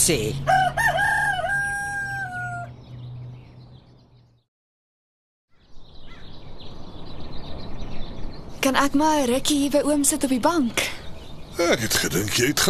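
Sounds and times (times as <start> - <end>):
speech: 0.0 - 0.6, 8.7 - 11.0, 11.6 - 12.6
steady outdoor noise: 0.0 - 4.5, 5.5 - 12.6
rooster crowing: 0.4 - 2.8.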